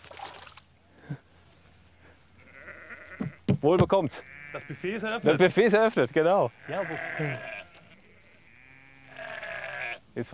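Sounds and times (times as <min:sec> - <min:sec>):
sheep bleating: 0:02.4 - 0:03.4, 0:04.1 - 0:10.0
speech: 0:03.6 - 0:07.5, 0:10.2 - 0:10.3.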